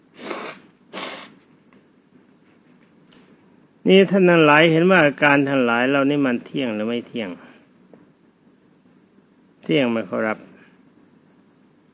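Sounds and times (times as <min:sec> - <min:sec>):
person imitating blowing a stuffy nose: 0:00.2 - 0:01.4
speech: 0:03.9 - 0:07.4, 0:09.7 - 0:10.5.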